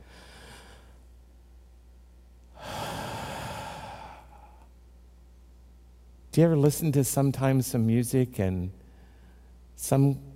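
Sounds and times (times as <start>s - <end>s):
deep breath: 0.0s - 1.0s, 2.6s - 4.7s, 8.8s - 9.6s
speech: 6.4s - 8.8s, 9.8s - 10.3s.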